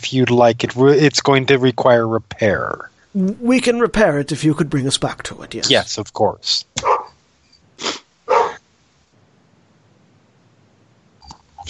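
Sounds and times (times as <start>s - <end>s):
speech: 0.0s - 6.9s
faint noise: 0.0s - 11.6s
dog barking: 6.8s - 7.2s, 8.3s - 8.6s.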